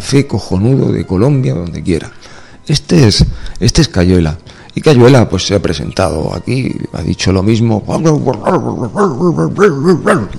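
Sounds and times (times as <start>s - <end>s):
speech: 0.0s - 10.3s
person imitating dog barking: 8.4s - 10.3s.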